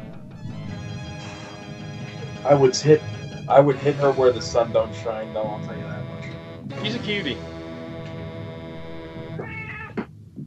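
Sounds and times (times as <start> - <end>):
speech: 2.4 - 6.0, 6.8 - 7.5
cat meowing: 9.3 - 10.1.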